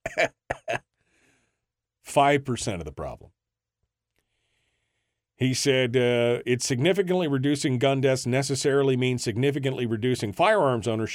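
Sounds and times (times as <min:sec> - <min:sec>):
laughter: 0:00.0 - 0:00.8
person mocking deliberate cough: 0:00.0 - 0:00.8
speech: 0:00.2 - 0:00.4, 0:02.1 - 0:03.4, 0:05.4 - 0:11.1.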